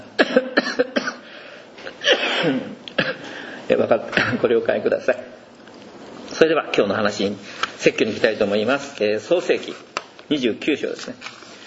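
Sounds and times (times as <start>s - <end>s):
person coughing: 0.2s - 1.3s, 1.9s - 3.3s, 4.1s - 4.5s
speech: 0.4s - 1.0s, 2.4s - 2.7s, 3.8s - 5.4s, 6.4s - 11.4s.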